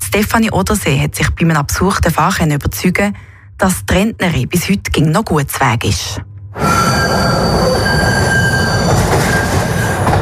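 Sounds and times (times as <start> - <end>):
speech: 0.2 - 6.8
thin metallic squealing of train wheels: 6.6 - 10.2
train wheels rumbling on rails: 6.6 - 10.2.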